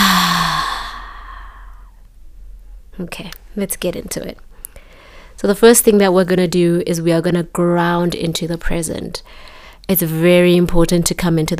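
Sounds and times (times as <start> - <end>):
deep breath exhaled during a guided breathing and grounding exercise: 0.0 - 2.0
speech: 3.0 - 4.5, 5.4 - 11.5.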